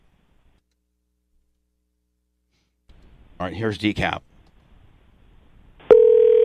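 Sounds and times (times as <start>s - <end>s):
speech: 3.4s - 4.3s
telephone dial tone: 5.9s - 6.4s.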